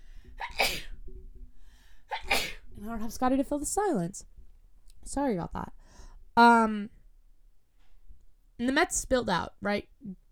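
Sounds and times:
sneeze with breathy burst: 0:00.4 - 0:00.9, 0:02.1 - 0:02.6
speech: 0:02.8 - 0:04.3, 0:05.1 - 0:05.8, 0:06.4 - 0:07.0, 0:08.6 - 0:10.2.

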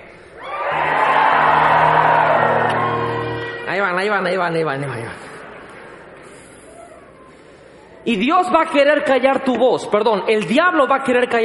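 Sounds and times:
audience shouting a cry of faith together: 0:00.5 - 0:03.6
speech: 0:04.0 - 0:05.4, 0:08.0 - 0:11.4.

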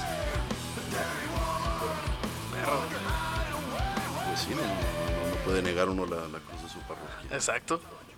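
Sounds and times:
steady pounding drum beat: 0:00.0 - 0:07.5
loud rock music with distorted guitars: 0:00.0 - 0:07.6
raw shouted vocals: 0:00.0 - 0:08.1
speech: 0:04.5 - 0:08.1.

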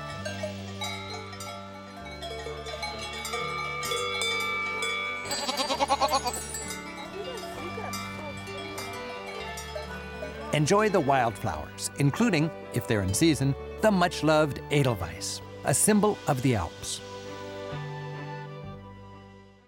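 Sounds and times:
livestock bells clanking high above villages in the Alps: 0:00.0 - 0:14.0
steady sustained musical backdrop: 0:00.0 - 0:19.6
tame alpine goat bleating with a wavering pulsing cry high above villages in the Alps: 0:05.3 - 0:06.5
speech: 0:10.6 - 0:17.1.

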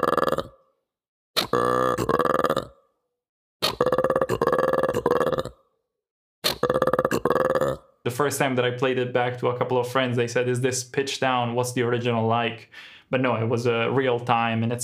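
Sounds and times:
mantled guereza giving guttural croaking burp-like bursts: 0:00.0 - 0:00.6, 0:01.4 - 0:02.8, 0:03.6 - 0:05.6, 0:06.4 - 0:07.9
speech: 0:08.2 - 0:14.8.

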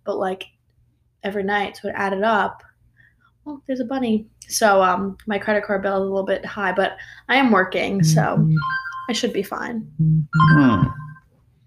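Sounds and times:
speech: 0:00.0 - 0:00.6, 0:01.2 - 0:02.7, 0:03.4 - 0:11.0
electronic mobile phone ringtone chirp: 0:08.0 - 0:09.2, 0:10.0 - 0:11.2.

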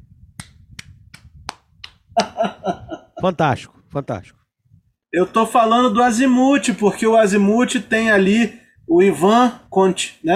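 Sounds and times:
hand claps: 0:00.4 - 0:02.4
laughter: 0:02.2 - 0:03.4
speech: 0:02.2 - 0:04.4, 0:05.1 - 0:10.3.

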